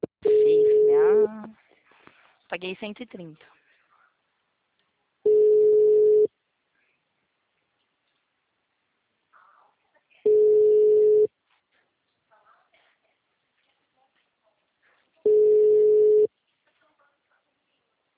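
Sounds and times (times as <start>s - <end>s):
faint small noises: 0.0s - 18.1s
ringback tone of an unanswered outgoing phone call: 0.2s - 1.3s, 5.3s - 6.3s, 10.3s - 11.3s, 15.3s - 16.3s
speech: 2.6s - 3.6s.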